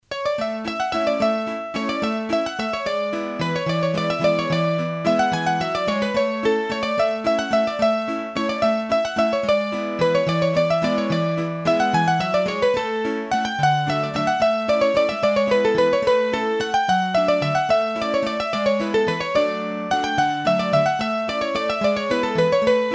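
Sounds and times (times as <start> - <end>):
hurdy gurdy playing a mazurka from the Massif Central: 0.1 - 22.9.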